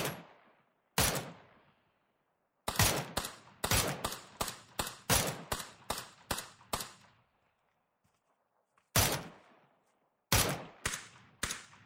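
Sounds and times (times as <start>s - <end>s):
gunshots: 0.0s - 0.4s, 1.0s - 1.5s, 2.7s - 7.1s, 8.9s - 9.6s, 10.3s - 11.8s.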